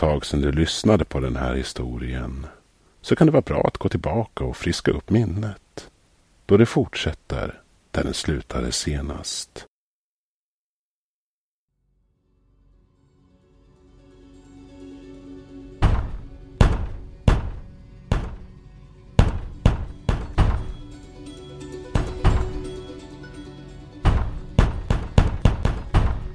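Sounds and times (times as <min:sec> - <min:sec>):
speech: 0:00.0 - 0:05.9, 0:06.5 - 0:09.7
woman's fists pounding on a door: 0:15.8 - 0:18.5, 0:19.2 - 0:20.8, 0:22.0 - 0:22.6, 0:24.0 - 0:26.3.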